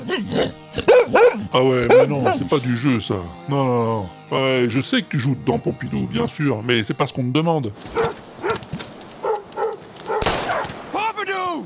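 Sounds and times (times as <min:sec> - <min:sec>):
speech: 0:00.1 - 0:08.2
dog barking: 0:00.3 - 0:02.5, 0:07.9 - 0:08.6, 0:09.2 - 0:10.7.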